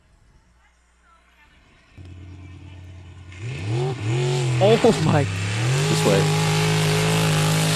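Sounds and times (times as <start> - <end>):
racing boat engine revving toward full throttle: 2.0 - 7.7
speech: 4.6 - 6.4.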